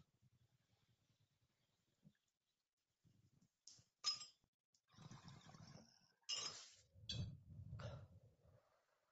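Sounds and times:
glass pipe bowls clinking together in a toast: 4.1s - 4.4s, 6.3s - 7.3s
low rumbling noise: 7.0s - 8.8s.

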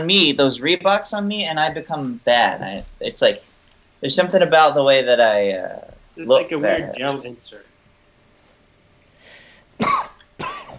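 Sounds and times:
speech: 0.0s - 7.7s, 9.8s - 10.1s
faint hiss: 0.0s - 10.7s
person coughing harshly: 9.8s - 10.7s.

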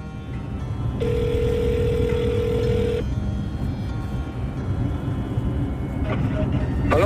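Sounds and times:
dense constant rumble: 0.0s - 7.0s
speech: 1.0s - 1.3s
phone ringback tone: 1.0s - 3.0s.

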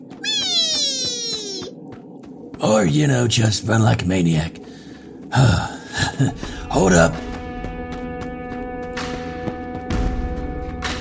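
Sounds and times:
soft rhythmic thumps: 0.0s - 10.9s
cat meowing: 0.2s - 1.7s
speech: 2.6s - 4.6s, 5.3s - 7.3s.

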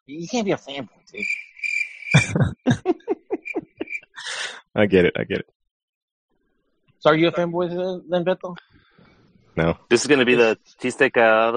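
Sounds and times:
speech: 0.1s - 1.5s, 4.8s - 5.6s, 7.0s - 8.9s, 9.6s - 11.5s
crickets chirping: 1.2s - 2.4s, 3.2s - 4.4s
loud laughter with rhythmic ha-ha pulses: 2.1s - 5.4s.

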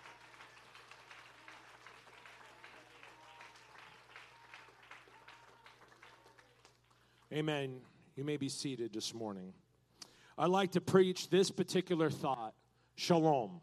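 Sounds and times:
audience clapping in praise during a morning church service: 0.0s - 7.6s
speech: 7.3s - 9.6s, 10.4s - 13.6s.

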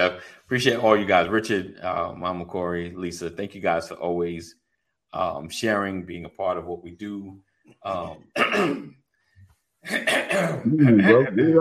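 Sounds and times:
speech: 0.0s - 9.0s, 9.8s - 11.5s
person clearing throat: 7.9s - 8.9s, 9.9s - 11.5s.

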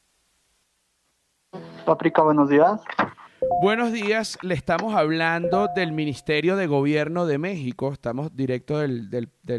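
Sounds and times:
speech: 1.9s - 9.5s
ringback tone of an outgoing phone call: 3.4s - 3.9s, 5.5s - 6.2s.

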